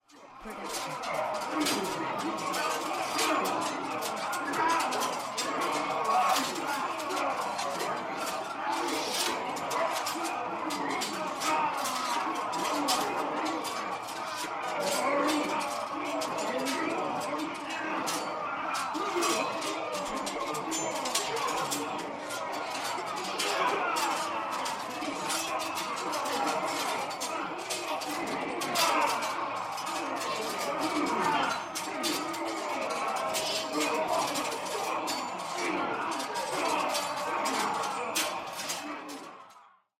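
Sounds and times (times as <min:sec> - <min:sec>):
laughter: 0:00.1 - 0:39.5
medieval army battle: 0:00.1 - 0:39.7.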